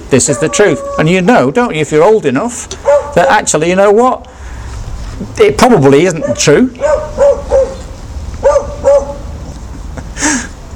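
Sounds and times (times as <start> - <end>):
speech: 0.1 - 4.3, 5.2 - 7.0
dog barking: 2.8 - 3.4, 6.2 - 7.8, 8.4 - 9.3.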